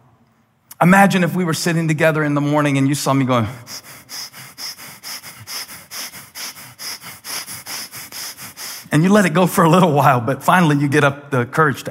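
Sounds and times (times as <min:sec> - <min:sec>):
speech: 0:00.8 - 0:04.0, 0:09.0 - 0:11.8
exaggerated forceful inhalations close to the microphone: 0:03.4 - 0:09.0.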